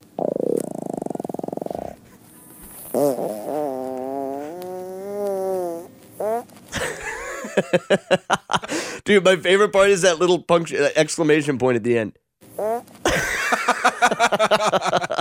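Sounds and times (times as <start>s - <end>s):
recorded raspy fart played back: 0.0s - 6.8s, 12.6s - 13.4s
speech: 3.0s - 3.7s, 7.6s - 12.7s, 14.1s - 15.1s
laughter: 6.8s - 8.8s, 13.1s - 15.1s.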